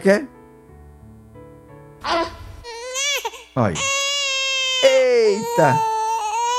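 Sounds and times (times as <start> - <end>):
speech: 0.0 - 0.4, 2.0 - 2.3, 3.6 - 4.0, 5.2 - 5.9
newborn baby crying: 2.0 - 6.5.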